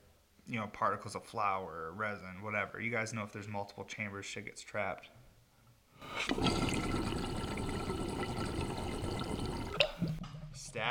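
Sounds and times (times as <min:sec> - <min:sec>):
speech: 0:00.5 - 0:05.2, 0:06.0 - 0:07.0, 0:10.6 - 0:10.8
water draining through a glass piece: 0:06.1 - 0:10.2.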